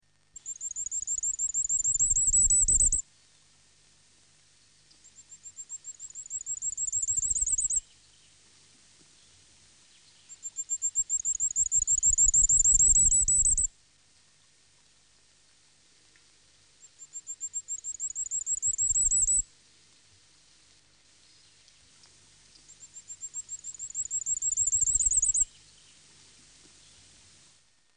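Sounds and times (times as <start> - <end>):
firecrest singing: 0.4 - 3.0, 5.0 - 7.8, 10.3 - 13.7, 16.8 - 19.4, 22.7 - 25.5.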